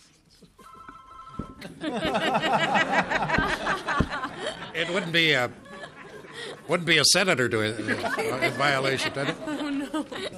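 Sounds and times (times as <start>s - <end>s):
cell phone ringtone chirping with electronic tones during a senate committee hearing: 0.6s - 1.7s
room full of people laughing during a senate committee hearing: 1.6s - 10.3s
speech: 1.8s - 3.2s, 4.8s - 5.6s, 6.4s - 10.3s.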